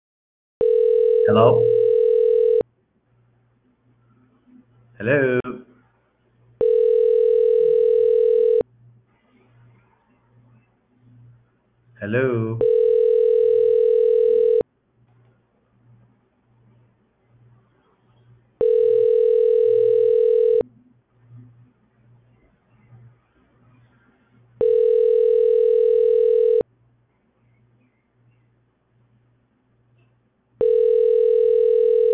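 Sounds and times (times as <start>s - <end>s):
phone ringing with a steady electronic tone: 0.6s - 2.6s, 6.6s - 8.6s, 12.6s - 14.6s, 18.6s - 20.6s, 24.6s - 26.6s, 30.6s - 32.1s
speech: 1.3s - 1.8s, 5.0s - 5.7s, 12.0s - 12.8s.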